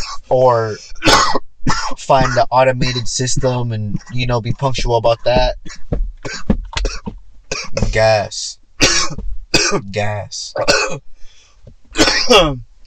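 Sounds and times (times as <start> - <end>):
harsh coughs: 0.0 - 4.4, 5.2 - 8.2, 8.8 - 11.0, 12.0 - 12.6
speech: 0.3 - 6.6, 7.9 - 11.1, 12.0 - 12.7.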